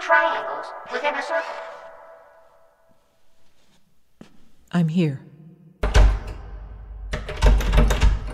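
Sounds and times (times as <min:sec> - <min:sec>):
speech: 0:00.1 - 0:01.8, 0:04.7 - 0:05.3
heavy locked stone door shoved and jostled: 0:05.8 - 0:08.3.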